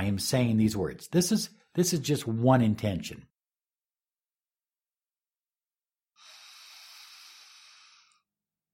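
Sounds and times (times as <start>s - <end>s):
speech: 0.0s - 3.3s
nasal exhale through one nostril: 6.2s - 8.3s.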